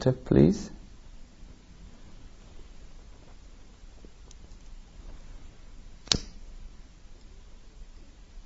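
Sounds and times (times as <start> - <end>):
speech: 0.0 - 0.8
steady low hiss of noise: 0.0 - 8.4
metallic click of a lighter being flicked: 6.0 - 6.5.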